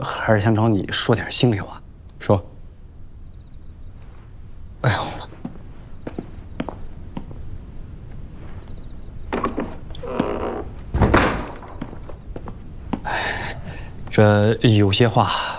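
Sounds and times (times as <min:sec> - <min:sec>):
speech: 0:00.0 - 0:02.5, 0:04.8 - 0:05.1, 0:14.2 - 0:15.5
light footsteps: 0:05.2 - 0:13.2
door being closed indoors: 0:09.3 - 0:12.3
heavy thump: 0:10.9 - 0:12.1.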